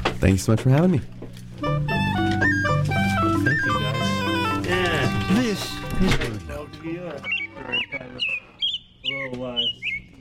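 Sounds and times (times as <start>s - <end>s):
speech: 0.2s - 1.2s, 9.3s - 10.0s
American robin singing bright short whistled phrases: 2.4s - 10.2s.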